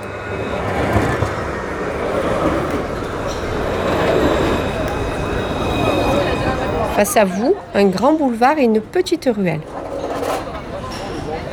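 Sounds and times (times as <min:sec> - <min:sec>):
faint high metallic whine of tram: 0:00.0 - 0:08.2
tram wheels rolling on rails: 0:00.0 - 0:11.5
speech: 0:07.0 - 0:09.8.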